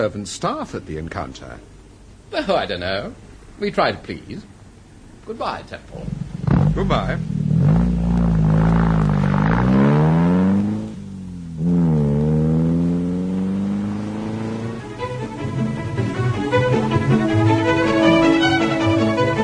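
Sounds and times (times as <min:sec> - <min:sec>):
speech: 0:00.0 - 0:04.5, 0:05.3 - 0:06.2, 0:06.8 - 0:07.4
car engine revving and driving: 0:06.0 - 0:19.4.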